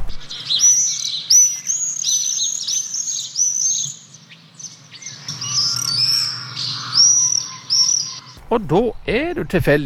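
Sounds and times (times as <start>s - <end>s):
common swift screaming in flight: 5.3s - 8.4s
speech: 8.5s - 9.8s.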